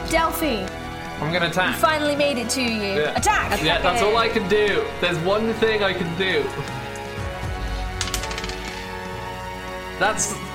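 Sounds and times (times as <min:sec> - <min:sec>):
speech: 0:00.1 - 0:06.8, 0:10.0 - 0:10.4
dice rolled for a tabletop role-playing game attack clattering on a table: 0:08.0 - 0:09.0.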